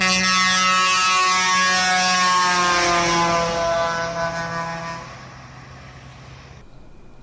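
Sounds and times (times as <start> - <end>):
loud brassy truck air horn blast: 0.0 - 5.7.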